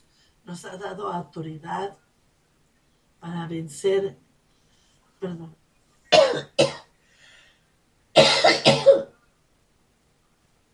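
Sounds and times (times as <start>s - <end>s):
speech: 0.5s - 2.1s, 3.2s - 4.2s, 5.2s - 5.6s
person coughing: 6.1s - 6.9s, 8.2s - 9.1s.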